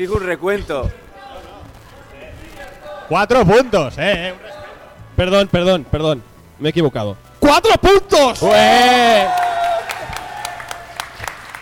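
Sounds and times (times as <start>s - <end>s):
speech: 0.0s - 1.0s, 3.1s - 4.5s, 5.2s - 9.4s
murmur of voices: 0.0s - 5.2s
whistle-like cheer: 8.4s - 11.0s
small group clapping: 8.4s - 11.5s.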